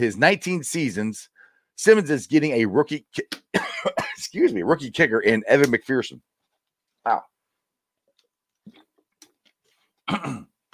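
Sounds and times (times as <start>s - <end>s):
speech: 0.0s - 6.4s, 7.0s - 7.3s, 10.1s - 10.5s
person clearing throat: 3.6s - 4.2s, 10.0s - 10.6s.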